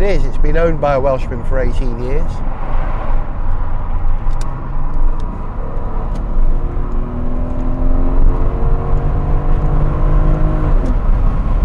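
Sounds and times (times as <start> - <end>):
speech: 0.0 - 2.7
sports car engine revving: 2.5 - 11.6.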